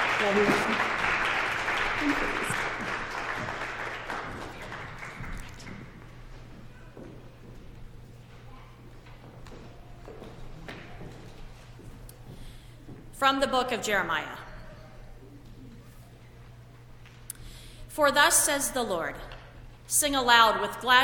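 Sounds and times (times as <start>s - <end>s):
roomful of people applauding: 0.0s - 6.4s
low room hum: 0.0s - 21.0s
speech: 0.2s - 1.0s, 2.0s - 2.6s, 13.2s - 14.4s, 18.0s - 19.3s, 19.9s - 21.0s.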